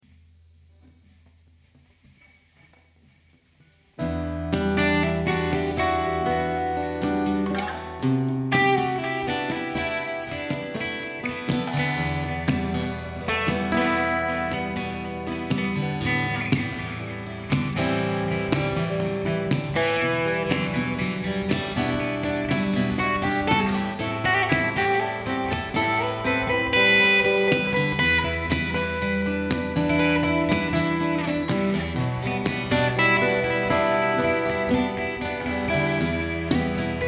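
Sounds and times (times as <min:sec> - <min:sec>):
acoustic jam in E minor at 120 BPM with reverb: 0:00.1 - 0:37.0.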